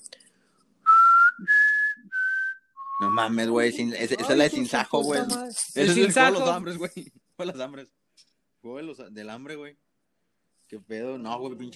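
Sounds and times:
person whistling a short four-note tune: 0:00.9 - 0:03.2
speech: 0:03.1 - 0:08.0, 0:08.6 - 0:09.8, 0:10.7 - 0:11.7.

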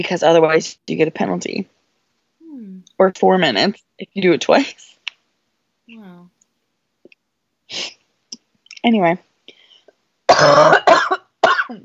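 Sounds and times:
speech: 0:00.0 - 0:01.8, 0:02.6 - 0:04.9, 0:05.9 - 0:06.3, 0:07.7 - 0:08.0, 0:08.8 - 0:09.3, 0:10.4 - 0:11.8
harsh raspy coughs: 0:10.3 - 0:11.8.

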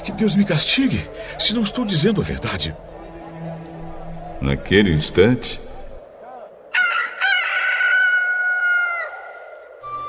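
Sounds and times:
speech: 0:00.0 - 0:03.0, 0:04.4 - 0:05.7
rooster crowing: 0:06.7 - 0:09.7.

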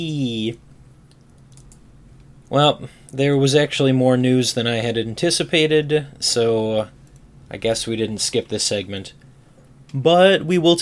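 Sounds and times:
speech: 0:00.0 - 0:00.7, 0:02.5 - 0:09.2, 0:09.9 - 0:10.8
low hum: 0:00.0 - 0:10.8
computer mouse clicking: 0:00.4 - 0:02.3
computer keyboard typing: 0:00.5 - 0:01.9.

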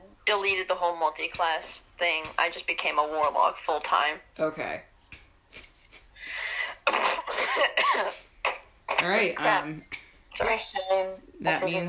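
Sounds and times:
speech: 0:00.3 - 0:04.9, 0:06.9 - 0:08.3, 0:09.0 - 0:11.8
person clearing throat, faked then real: 0:06.8 - 0:08.7.

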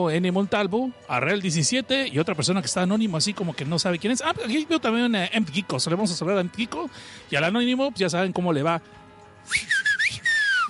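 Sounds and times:
speech: 0:00.0 - 0:09.9
short whistled tune: 0:09.5 - 0:10.6.

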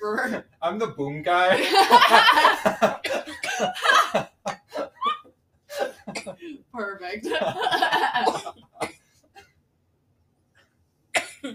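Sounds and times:
speech: 0:00.2 - 0:04.0
laughter: 0:01.5 - 0:05.2, 0:07.2 - 0:08.4
person coughing hard: 0:02.9 - 0:03.8, 0:05.8 - 0:06.6, 0:07.3 - 0:09.0, 0:11.2 - 0:11.5.

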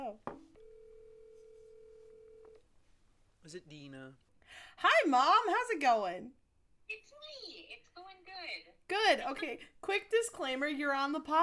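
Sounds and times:
electronic phone ringback tone through the line: 0:00.4 - 0:02.6
speech: 0:03.5 - 0:11.4.

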